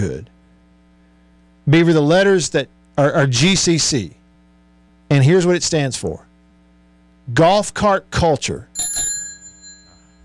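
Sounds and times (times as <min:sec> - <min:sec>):
speech: 0:00.0 - 0:00.4, 0:01.6 - 0:04.2, 0:05.1 - 0:06.3, 0:07.3 - 0:09.0
handheld bell ringing with a bright metallic tone: 0:08.8 - 0:10.2.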